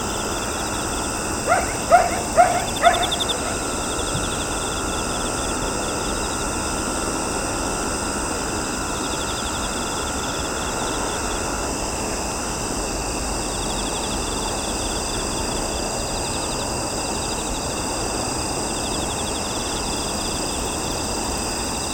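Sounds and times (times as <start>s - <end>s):
steady insect drone at night in Kashiwa Japan: 0.0s - 21.9s
dog barking at night in Kashiwa Japan: 1.4s - 4.4s.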